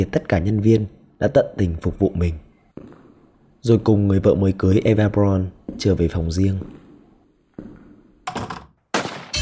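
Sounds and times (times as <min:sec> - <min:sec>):
speech: 0:00.0 - 0:02.5, 0:03.6 - 0:06.8
heavy gunshot-like bangs with booming decay: 0:08.9 - 0:09.4.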